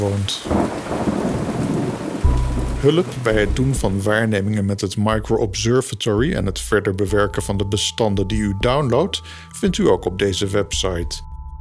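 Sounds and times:
speech: 0.0 - 1.1, 2.8 - 11.3
steady rain pouring down: 0.0 - 4.1
deep rumble of thunder: 0.1 - 4.1.

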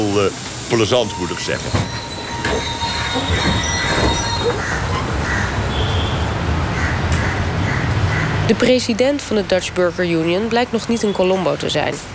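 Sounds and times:
train wheels squealing metallically: 0.0 - 6.5
moving passenger train rumbling along the rails: 0.0 - 12.1
speech: 0.2 - 2.1, 8.5 - 12.1.

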